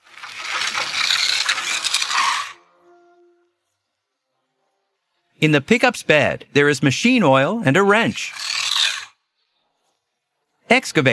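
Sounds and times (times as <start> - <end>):
tower crane mechanism rattling and ratcheting while being fixed: 0.0 - 2.6, 8.0 - 9.2
speech: 5.4 - 8.5, 10.7 - 11.1.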